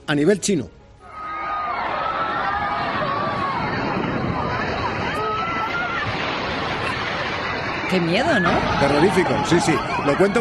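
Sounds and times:
speech: 0.1 - 0.8, 7.9 - 10.3
crowd of bathers shouting and screaming: 1.0 - 10.3
rush of churning water from a 2-metre wave in a wave pool: 2.7 - 10.3.

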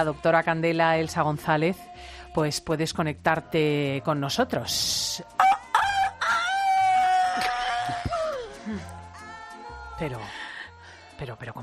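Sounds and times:
speech: 0.0 - 5.5, 10.0 - 10.4, 11.2 - 11.6
woman imitating a rooster crow: 5.4 - 8.4.

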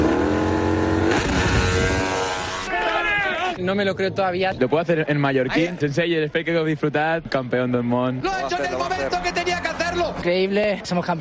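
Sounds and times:
racing motorcycle engine revving: 0.0 - 2.7
speech: 3.6 - 11.1.

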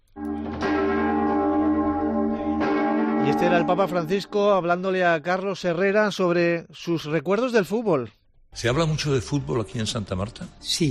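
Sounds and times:
largest bell of Mallorca Cathedral tolling: 0.1 - 5.2
speech: 3.3 - 10.9.

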